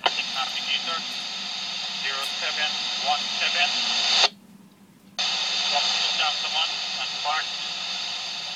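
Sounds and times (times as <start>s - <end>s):
faint voice transmitted over radio: 0.0s - 4.3s, 5.2s - 8.5s
radio static white noise hiss: 0.0s - 4.4s, 5.1s - 8.5s.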